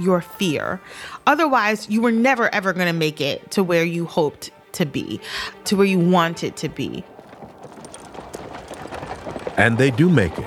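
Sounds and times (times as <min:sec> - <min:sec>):
speech: 0:00.0 - 0:07.1, 0:09.6 - 0:10.4
horse hooves clip-clopping: 0:05.8 - 0:10.4
continuous rumbling background: 0:06.1 - 0:10.4.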